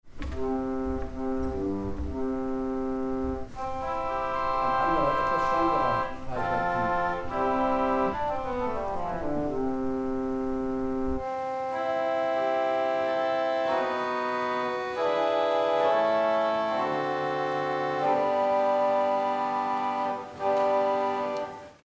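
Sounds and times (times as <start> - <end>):
organ playing on the viol d'orchestre stop: 0.1 - 21.8.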